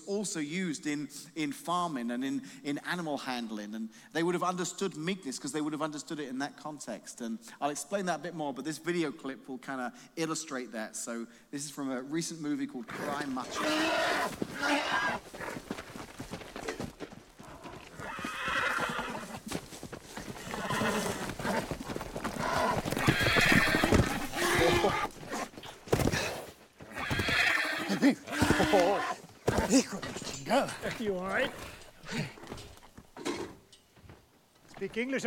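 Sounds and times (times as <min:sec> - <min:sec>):
speech: 0:00.1 - 0:15.8, 0:30.5 - 0:32.7, 0:34.8 - 0:35.2
wild horses whinnying and neighing loudly: 0:12.8 - 0:33.2
clatter of horse hooves: 0:12.8 - 0:35.2.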